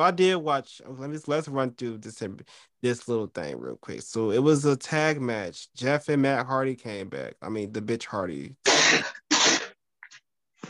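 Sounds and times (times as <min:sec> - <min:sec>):
speech: 0:00.0 - 0:09.2
person sneezing: 0:08.6 - 0:09.8.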